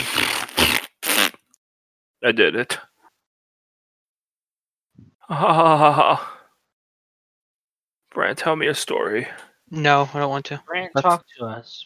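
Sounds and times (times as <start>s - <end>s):
loud raspy sputtering fart noises: 0.0s - 1.4s
speech: 2.2s - 2.9s, 5.3s - 6.3s, 8.2s - 11.8s.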